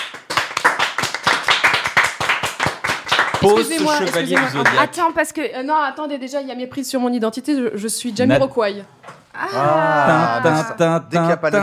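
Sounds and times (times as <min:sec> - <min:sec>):
small group of hosts clapping: 0:00.0 - 0:05.0
speech: 0:03.4 - 0:11.6.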